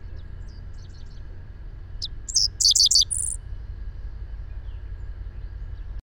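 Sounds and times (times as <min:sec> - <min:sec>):
faint low rumble: 0:00.0 - 0:06.0
bird singing a high twittering phrase of rapid chirps: 0:02.0 - 0:03.4.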